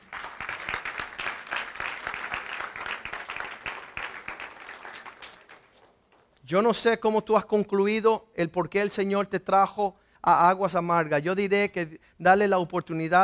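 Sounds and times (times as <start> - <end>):
standing church audience applauding: 0.0 - 6.0
speech: 6.5 - 13.2.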